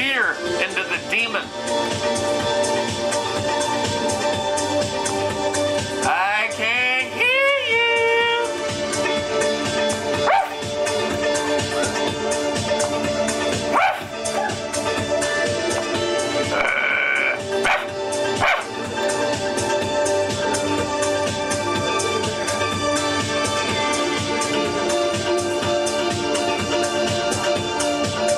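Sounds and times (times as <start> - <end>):
dense continuous musical backing: 0.0 - 28.3
speech: 0.3 - 2.6
person imitating a barking dog: 10.2 - 10.6, 13.7 - 14.6, 16.4 - 18.7.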